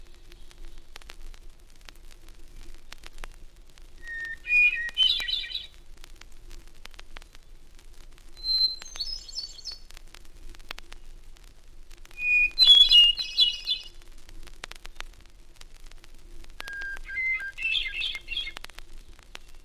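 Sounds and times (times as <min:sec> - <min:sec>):
crackling clicks: 0:00.0 - 0:19.6
Hermit Thrush singing from a balsam spire in the Adirondack Mountains: 0:04.0 - 0:05.7, 0:08.4 - 0:09.8, 0:12.2 - 0:13.9, 0:16.6 - 0:18.6.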